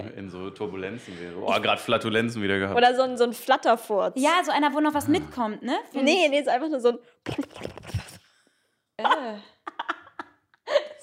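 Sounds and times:
speech: 0.0 - 8.1, 9.0 - 9.5
short choppy vocal bursts: 4.9 - 5.6, 7.3 - 8.2
voice imitating a burp: 4.9 - 5.6
voiced grunt: 5.0 - 5.6.

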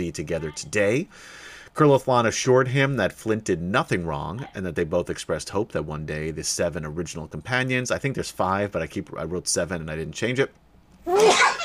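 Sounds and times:
speech: 0.0 - 11.4
sneeze: 11.1 - 11.6.

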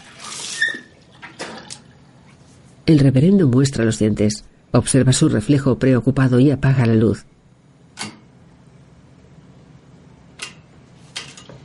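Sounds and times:
person spitting into a bathroom sink after brushing teeth: 0.0 - 1.8
speech: 2.9 - 7.3.

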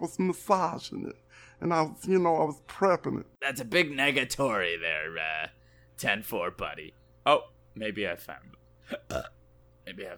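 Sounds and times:
speech: 0.0 - 10.1
burp: 8.8 - 9.4.

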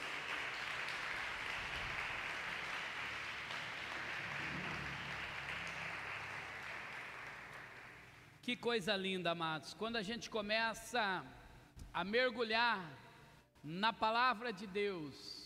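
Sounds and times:
large crowd applauding: 0.0 - 8.4
speech: 8.4 - 13.0, 13.6 - 15.4.

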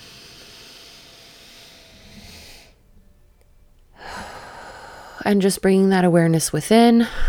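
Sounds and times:
deep breath in and out during guided relaxation: 0.0 - 5.5, 7.0 - 7.2
speech: 5.2 - 7.2.

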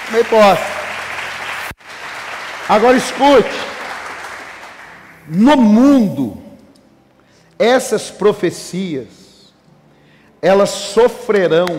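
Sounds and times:
large crowd applauding: 0.0 - 5.2
speech: 0.1 - 0.7, 2.7 - 3.7, 5.3 - 6.4, 7.6 - 9.2, 10.4 - 11.7.

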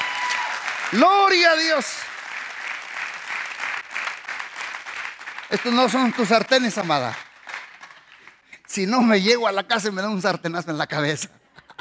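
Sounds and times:
audience applauding: 0.0 - 8.5
speech: 0.9 - 2.1, 5.5 - 7.2, 8.8 - 11.4.

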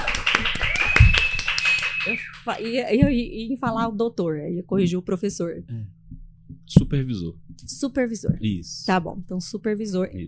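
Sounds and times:
scattered clapping from a small group: 0.0 - 3.0
speech: 2.1 - 6.0, 6.7 - 10.2.

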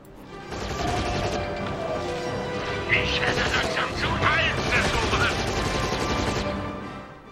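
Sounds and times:
third-person shooter video game gunfire: 0.4 - 2.0, 3.2 - 6.7
crashing explosions in third-person shooter video game: 0.4 - 6.9.

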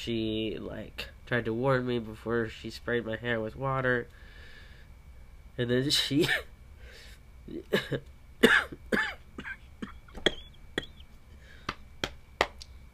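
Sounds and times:
speech: 0.0 - 4.2, 5.6 - 6.5, 7.5 - 9.1
person with a week-long cough coughing: 6.2 - 6.5, 7.6 - 11.0
throat clearing: 7.6 - 11.0.

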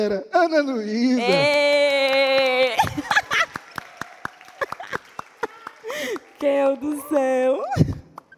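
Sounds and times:
speech: 0.0 - 3.2, 6.4 - 7.9
high drawn-out vocal tone: 1.2 - 2.4
small group clapping: 1.2 - 8.3
laughter: 2.5 - 3.7.

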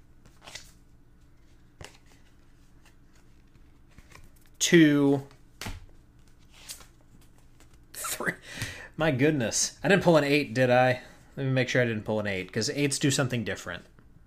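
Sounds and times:
deck of playing cards riffling: 0.2 - 4.6, 5.3 - 7.9
speech: 4.6 - 5.3, 9.0 - 14.0.

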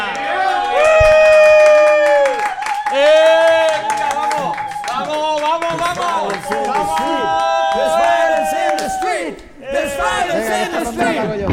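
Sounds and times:
scattered clapping: 0.0 - 9.4
crowd of voices bellowing a rousing battle cry: 6.7 - 11.4.

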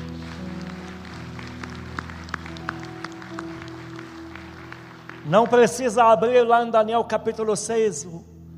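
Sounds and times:
church audience clapping and applauding: 0.0 - 6.4
speech: 5.3 - 8.3.

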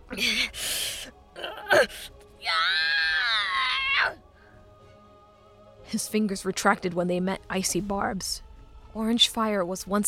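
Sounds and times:
speech: 0.2 - 0.6, 1.8 - 2.1, 5.9 - 10.0
small imp creature screaming in pain: 1.4 - 4.2.

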